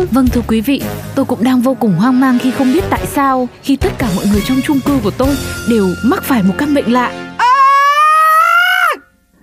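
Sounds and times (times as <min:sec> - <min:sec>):
speech: 0:00.1 - 0:07.3
person screaming loudly: 0:07.4 - 0:09.1.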